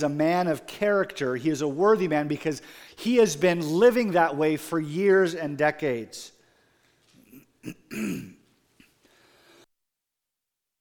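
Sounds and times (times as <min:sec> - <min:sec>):
speech: 0:00.0 - 0:06.4, 0:07.6 - 0:08.4
preacher clearing his throat during a church service: 0:07.2 - 0:08.5.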